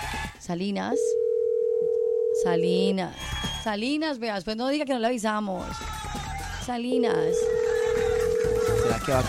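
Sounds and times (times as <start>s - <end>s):
speech: 0.5s - 1.2s, 2.4s - 5.9s, 6.6s - 7.5s, 8.9s - 9.2s
unanswered telephone call ringing tone: 1.0s - 2.9s, 6.9s - 9.2s.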